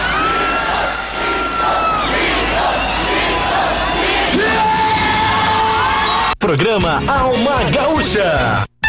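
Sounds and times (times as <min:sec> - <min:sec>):
crowd of young people shouting and cheering: 0:00.0 - 0:06.7
speech: 0:06.5 - 0:08.7.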